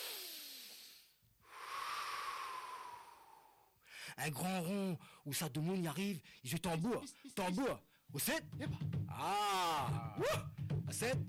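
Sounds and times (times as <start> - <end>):
deep breathing in and out: 0.0 - 4.2, 5.0 - 5.3
long steady wheezy exhale: 0.0 - 4.2
speech: 4.1 - 11.2.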